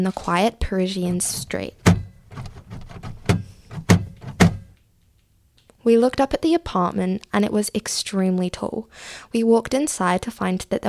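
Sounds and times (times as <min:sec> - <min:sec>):
speech: 0:00.0 - 0:01.8, 0:05.8 - 0:10.8
softer knocks and rattles of a taxi car boot being handled: 0:01.0 - 0:04.8
taxi driver slamming shut a car boot on a quiet street in Paris: 0:01.4 - 0:04.7.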